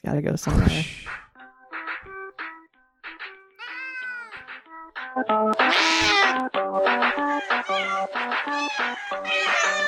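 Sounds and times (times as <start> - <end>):
speech: 0.0 - 1.2, 5.2 - 5.9
many cats meowing and yowling: 3.6 - 4.4, 5.6 - 9.8.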